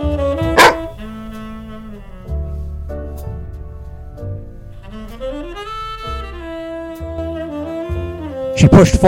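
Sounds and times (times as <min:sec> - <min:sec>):
single short dog bark: 0:00.5 - 0:01.0
sustained musical tones: 0:00.5 - 0:08.5
speech: 0:08.6 - 0:09.0.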